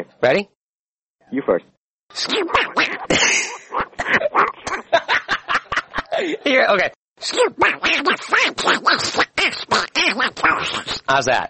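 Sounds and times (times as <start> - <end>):
speech: 0.0 - 0.6, 1.3 - 4.9, 6.2 - 11.4
person doing raspy quacking cartoon-duck voice: 2.1 - 4.6, 7.2 - 11.3
laughter: 3.2 - 6.4.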